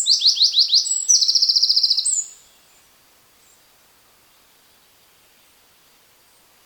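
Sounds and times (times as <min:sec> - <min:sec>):
Eurasian wren Troglodytes troglodytes song with rattling trill and thin whistle: 0:00.0 - 0:03.6.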